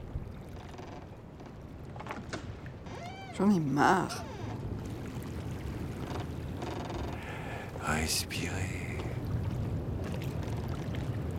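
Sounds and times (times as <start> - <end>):
speech: 3.4 - 4.3, 8.0 - 8.9
soft wash of moving sea waves: 3.4 - 11.3.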